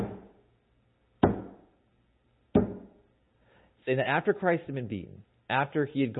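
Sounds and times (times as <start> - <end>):
sharp solid knocks imitating a small metal mallet driving a nail: 0.0 - 0.3, 1.2 - 1.7, 2.6 - 3.0
speech: 3.9 - 6.1.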